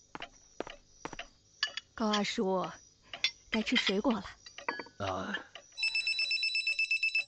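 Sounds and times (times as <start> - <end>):
speech: 2.0 - 2.8, 3.5 - 4.4, 5.0 - 5.5
telephone ringing for an incoming call: 5.8 - 7.2.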